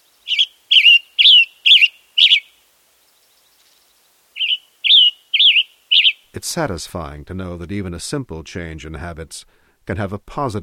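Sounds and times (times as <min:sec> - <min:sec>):
western tanager chirping: 0:00.0 - 0:06.3
speech: 0:06.4 - 0:10.6.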